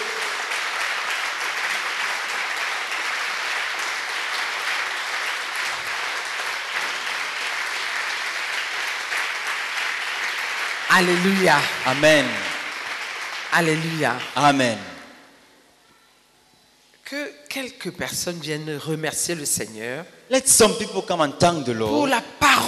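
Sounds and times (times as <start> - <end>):
congregation clapping in praise during a church worship service: 0.0 - 15.4
speech: 10.9 - 12.5, 13.5 - 14.9, 17.5 - 22.6.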